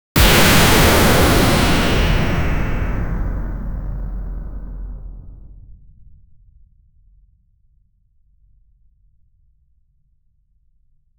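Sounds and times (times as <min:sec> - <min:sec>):
sci-fi plasma explosion special effect: 0:00.2 - 0:05.8.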